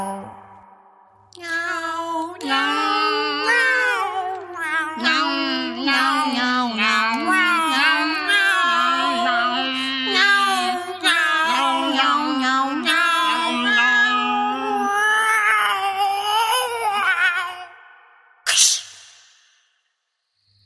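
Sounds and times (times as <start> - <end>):
person singing meow-like notes in a children's song: 1.4 - 17.7.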